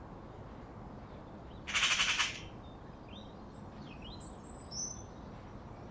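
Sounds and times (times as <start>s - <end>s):
faint thin calls from other birds: 1.6s - 2.5s
Eurasian magpie Pica pica chattering: 1.7s - 2.5s.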